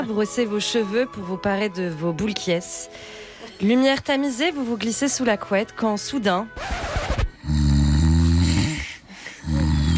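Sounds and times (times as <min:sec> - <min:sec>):
speech: 0:00.0 - 0:06.9
person snoring loudly with rasping inhales: 0:07.4 - 0:09.9.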